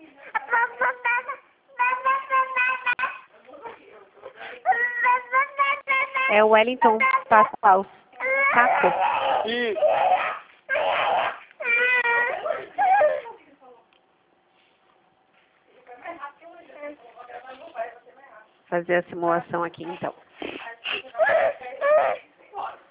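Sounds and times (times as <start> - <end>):
small child whimpering and crying over a phone line: 0.4 - 3.3, 4.7 - 6.3, 8.2 - 13.4, 21.2 - 22.2
speech: 6.3 - 10.3, 18.8 - 20.2
adult talking: 9.4 - 10.0.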